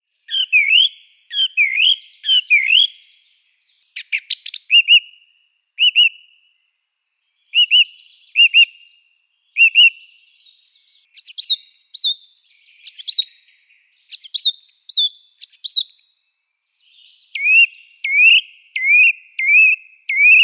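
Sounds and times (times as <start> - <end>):
song thrush singing: 0.0 - 20.4.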